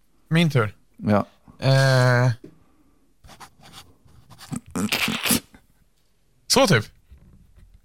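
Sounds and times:
speech: 0.3 - 2.5, 6.6 - 7.0
pen writing an autograph on paper: 3.3 - 4.7.

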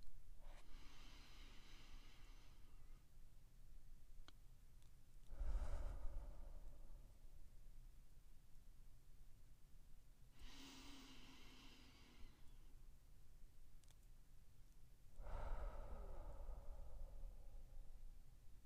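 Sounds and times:
slow deep breathing, nose in, mouth out: 0.4 - 3.1, 5.2 - 7.5, 10.3 - 12.8, 15.1 - 18.4.

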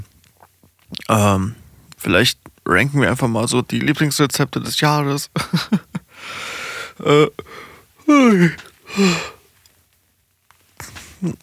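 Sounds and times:
speech: 1.1 - 9.4, 11.2 - 11.4
laughter: 5.2 - 6.1
person yawning with a falling breathy voice: 6.2 - 9.4, 11.2 - 11.4
throat clearing: 6.9 - 9.4, 10.8 - 11.4.

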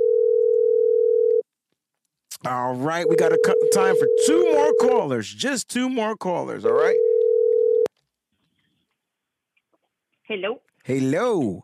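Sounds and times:
telephone dial tone of an outgoing call: 0.0 - 1.4, 6.9 - 7.9
speech: 2.4 - 7.1, 10.3 - 11.6.

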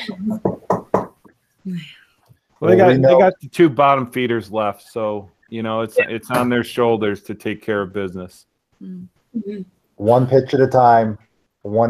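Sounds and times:
speech: 0.1 - 0.5, 1.7 - 2.0, 2.6 - 11.8
knocking on a wooden surface for luck: 0.4 - 1.3.

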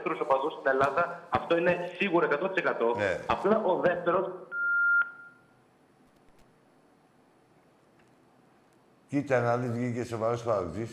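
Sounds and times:
speech: 0.0 - 4.6, 9.1 - 10.9
steady electronic telephone line tone as a call drops: 4.5 - 5.5.

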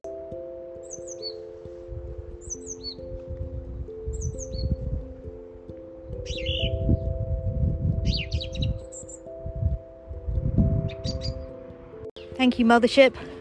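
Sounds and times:
song thrush singing: 0.1 - 13.3
speech: 12.4 - 13.3.

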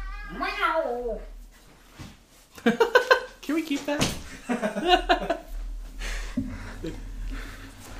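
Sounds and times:
cat meowing while being put out of the room: 0.0 - 1.3
speech: 0.3 - 1.4, 2.6 - 5.5, 6.4 - 7.4
laughter: 2.6 - 3.3, 4.4 - 5.6.

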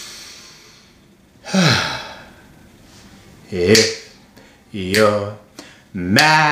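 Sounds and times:
deep breath in and out: 0.0 - 3.1, 5.6 - 5.9
speech: 3.5 - 4.0, 4.7 - 5.4, 6.0 - 6.5.

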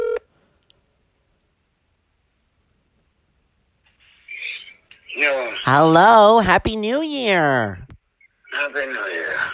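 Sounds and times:
short loud electronic phone tone: 0.0 - 0.2
rustling static: 1.2 - 9.5
speech: 5.2 - 7.8, 8.6 - 9.5.

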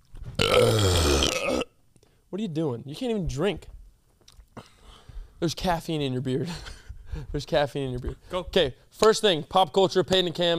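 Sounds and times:
long loud guttural burp: 0.4 - 1.8
speech: 2.4 - 3.8, 5.4 - 10.5.

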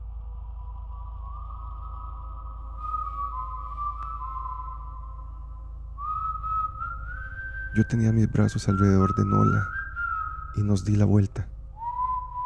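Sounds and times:
eerie wavering whistle outside a window: 0.0 - 12.4
steady low rumble: 0.0 - 12.4
speech: 7.8 - 9.8, 10.6 - 11.5.

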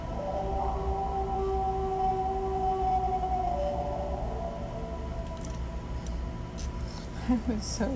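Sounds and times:
eerie drawn-out creature howling: 0.0 - 6.1
speech: 7.3 - 7.9.

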